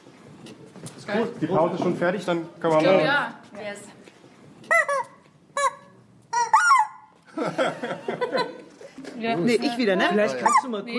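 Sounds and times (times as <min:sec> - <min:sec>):
speech: 0:01.1 - 0:04.0, 0:09.2 - 0:10.9
chickens clucking and squawking: 0:06.4 - 0:07.1
laughter: 0:07.3 - 0:09.1.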